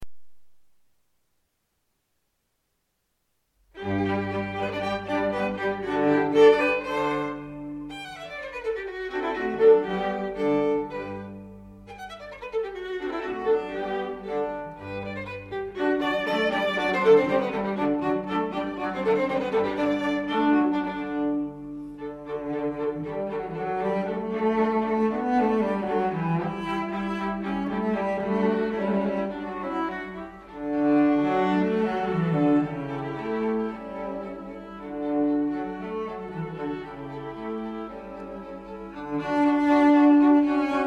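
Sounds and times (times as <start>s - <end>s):
string quartet in G major: 3.8s - 40.8s.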